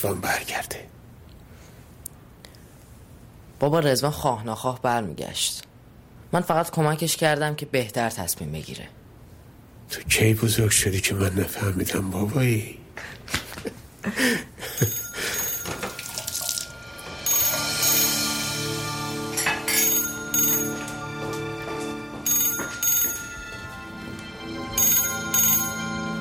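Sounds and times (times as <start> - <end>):
speech: 0.0 - 1.0, 3.6 - 5.7, 6.3 - 9.0, 9.9 - 15.0
telephone bell ringing inside a family home: 14.7 - 26.2.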